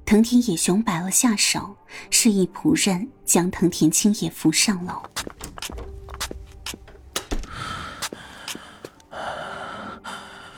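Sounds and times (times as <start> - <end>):
speech: 0.1 - 6.3
man panting heavily: 7.5 - 10.5.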